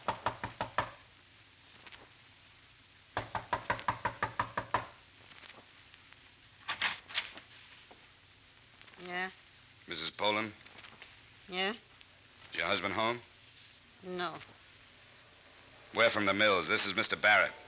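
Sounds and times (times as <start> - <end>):
knocking on the door of a home: 0.0 - 1.0, 3.2 - 5.0
speech: 9.2 - 10.6, 11.5 - 11.9, 12.5 - 13.3, 14.0 - 14.5, 15.9 - 17.6.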